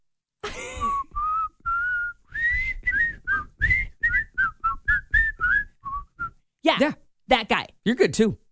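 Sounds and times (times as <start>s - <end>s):
person whistling a bright lilting melody: 0.6s - 6.4s
speech: 6.7s - 8.4s.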